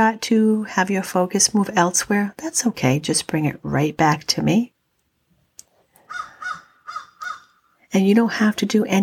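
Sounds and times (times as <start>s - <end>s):
speech: 0.0s - 4.7s, 7.9s - 9.0s
crow cawing outside: 6.0s - 7.8s.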